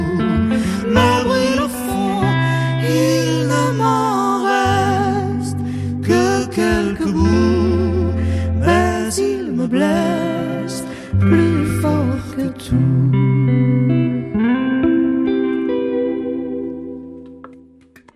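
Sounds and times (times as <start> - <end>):
chanson singer's vibrato-laden voice performed live in studio: 0.0 - 14.4
steady bass: 0.0 - 15.1
full instrumental backing: 0.0 - 18.1.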